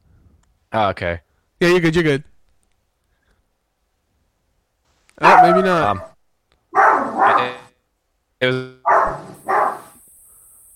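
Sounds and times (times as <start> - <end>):
speech: 0.7 - 2.3, 5.2 - 6.1, 7.4 - 7.6, 8.4 - 9.1
dog barking: 5.2 - 7.7, 8.8 - 10.0.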